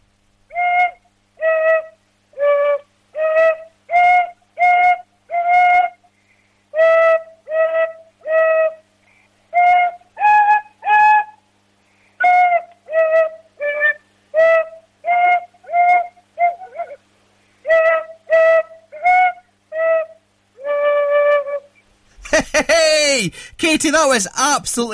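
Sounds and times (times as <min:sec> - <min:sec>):
child playing simple tin whistle melody: 0:00.5 - 0:06.0, 0:06.8 - 0:08.8, 0:09.5 - 0:11.4, 0:12.2 - 0:17.0, 0:17.6 - 0:21.8
laughter: 0:22.2 - 0:24.9
speech: 0:23.3 - 0:24.9.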